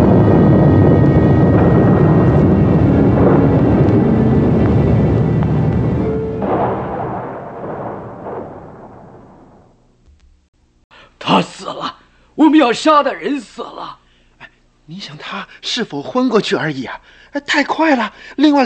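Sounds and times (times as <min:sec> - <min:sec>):
loud thunder rumbling: 0:00.0 - 0:10.5
speech: 0:12.6 - 0:14.0, 0:14.9 - 0:18.6.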